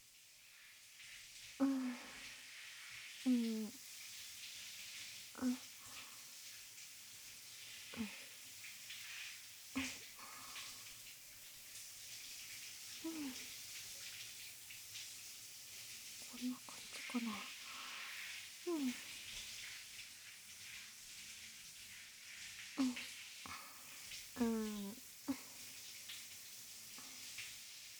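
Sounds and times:
hot water pouring: 0:00.0 - 0:27.9
speech: 0:01.6 - 0:01.8.

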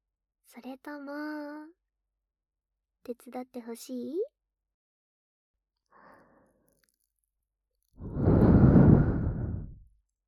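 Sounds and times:
speech: 0:00.5 - 0:01.8, 0:03.0 - 0:04.4
long warm breath exhaled into the ear: 0:08.0 - 0:09.9.

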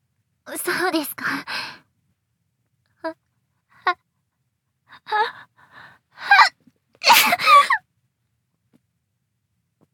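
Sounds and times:
speech: 0:00.5 - 0:01.7
person sneezing: 0:07.0 - 0:07.7.

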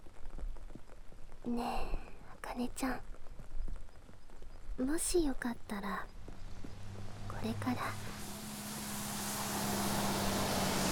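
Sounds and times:
speech: 0:01.4 - 0:03.1, 0:04.8 - 0:06.2, 0:07.4 - 0:08.1
broad road noise: 0:05.6 - 0:10.9
bus engine rumbling pulling away from stop: 0:06.6 - 0:10.9.

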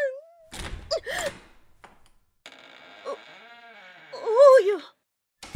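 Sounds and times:
heavy door opening with a thunk and rattle: 0:00.5 - 0:01.6
heavy door grinding creak as it swings wide: 0:02.5 - 0:04.6.

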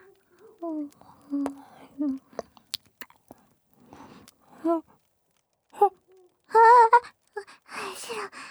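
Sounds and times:
breathy whispering: 0:00.0 - 0:04.9, 0:06.9 - 0:08.4
ASMR mouth sounds of nibbling and eating an ear: 0:00.4 - 0:04.5.

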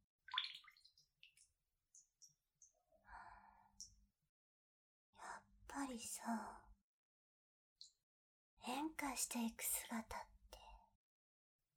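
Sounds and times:
water sloshing and gurgling: 0:00.3 - 0:01.4
liquid dripping: 0:00.3 - 0:02.7
speech: 0:05.8 - 0:06.7, 0:08.6 - 0:10.3.

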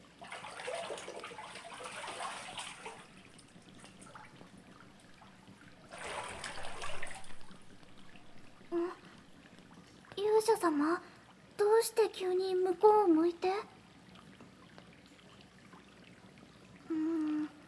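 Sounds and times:
water poured over a body to rinse it during a bath: 0:00.0 - 0:09.1
water trickling during a bath: 0:00.0 - 0:17.6
speech: 0:10.4 - 0:11.1, 0:11.8 - 0:13.7.

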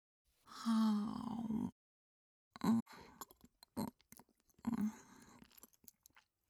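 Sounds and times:
speech: 0:00.6 - 0:00.9
chewing and biting into a home-made hamburger steak bento: 0:03.2 - 0:06.3.

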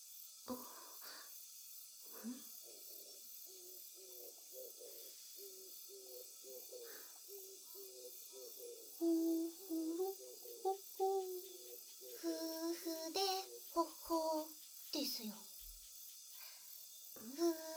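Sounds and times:
constant high hiss: 0:00.0 - 0:17.7
pair of birds hooting at dusk: 0:02.6 - 0:15.2.

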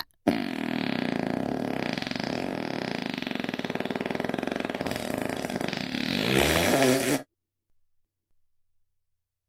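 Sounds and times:
long loud fart: 0:00.3 - 0:07.3.

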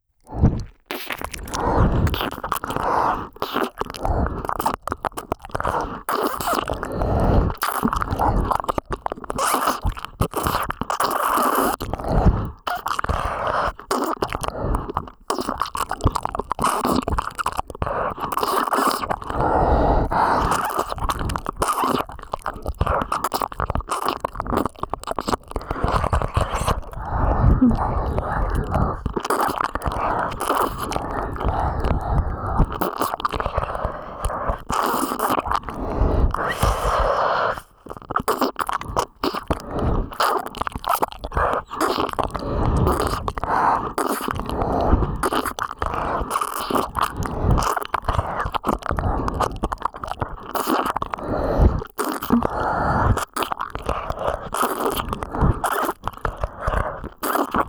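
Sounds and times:
ASMR ear licking sounds in the right ear: 0:00.2 - 0:57.6.

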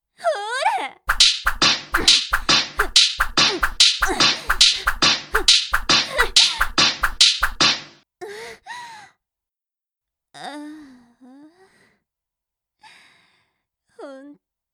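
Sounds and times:
whip lashes cracking: 0:01.1 - 0:08.0.

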